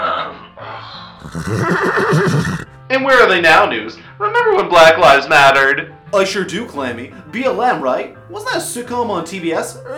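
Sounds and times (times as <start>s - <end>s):
horse whinnying loudly: 1.2s - 2.8s
speech: 1.2s - 9.9s.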